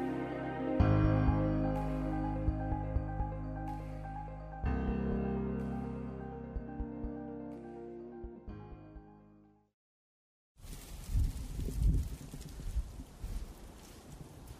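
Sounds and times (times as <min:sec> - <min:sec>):
sustained tonal music: 0:00.0 - 0:09.7
strong wind gusts outdoors on a city street in Chicago: 0:10.6 - 0:14.5.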